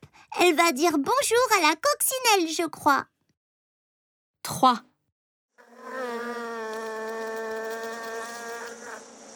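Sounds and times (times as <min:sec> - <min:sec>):
speech: 0:00.4 - 0:03.1, 0:04.5 - 0:04.9
bees buzzing from flower to flower collecting nectar: 0:05.6 - 0:09.3.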